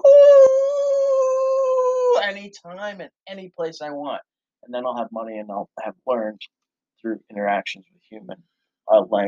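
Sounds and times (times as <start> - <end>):
person imitating a wolf howl: 0.0 - 2.2
speech: 2.3 - 9.2.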